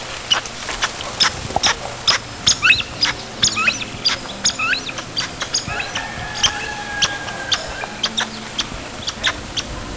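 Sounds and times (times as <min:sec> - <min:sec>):
groove-billed ani dry ticking notes: 0:00.2 - 0:09.7
groove-billed ani Crotophaga sulcirostris whistled slurred flight calls: 0:02.1 - 0:09.7.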